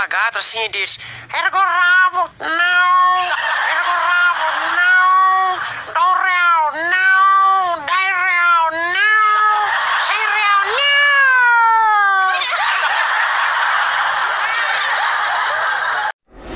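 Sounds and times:
speech: 0.0s - 4.0s
laughter: 3.2s - 6.0s, 9.3s - 16.2s
tomcat and female cat caterwauling while courting: 6.1s - 12.6s.

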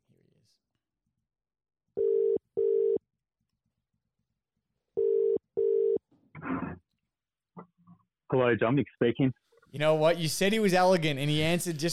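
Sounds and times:
telephone double-burst ringback tones on the line: 2.0s - 3.0s, 5.0s - 6.0s
speech: 8.3s - 11.9s.

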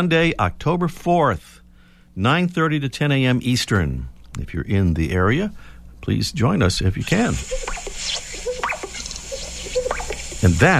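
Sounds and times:
speech: 0.0s - 1.6s, 2.2s - 8.2s, 10.4s - 10.7s
birds calling: 7.0s - 10.7s
male greater sage grouse displaying with popping and bubbling notes: 7.0s - 10.7s.

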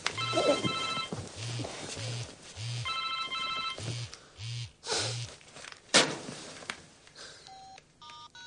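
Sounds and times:
mobile phone ringing tone: 0.1s - 4.6s, 7.5s - 8.4s.

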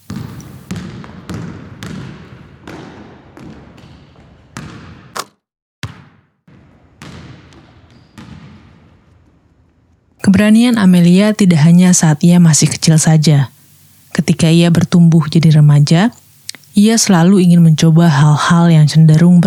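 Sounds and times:
basketball bouncing: 0.0s - 9.1s
speech: 10.4s - 13.6s, 14.2s - 16.2s, 16.8s - 19.4s.

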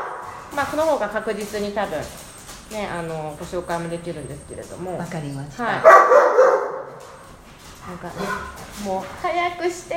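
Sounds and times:
dog barking: 0.0s - 0.4s, 5.8s - 7.2s
speech: 0.5s - 6.6s, 7.9s - 9.9s.

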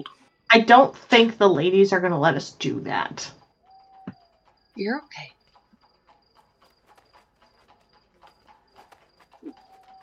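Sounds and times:
speech: 0.0s - 3.4s, 4.8s - 5.4s
horse hooves clip-clopping: 2.0s - 10.0s.

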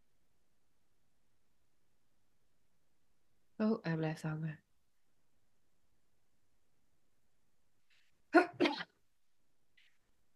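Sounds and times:
speech: 3.6s - 4.7s
person sneezing: 8.4s - 8.9s.

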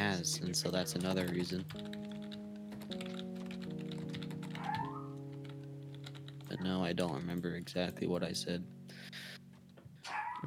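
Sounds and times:
typing on a computer keyboard: 0.0s - 6.7s
speech: 0.1s - 2.1s, 6.5s - 8.8s.

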